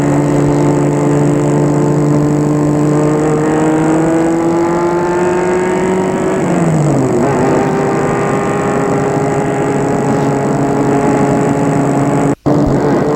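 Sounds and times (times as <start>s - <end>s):
car engine humming and accelerating: 0.0s - 13.1s.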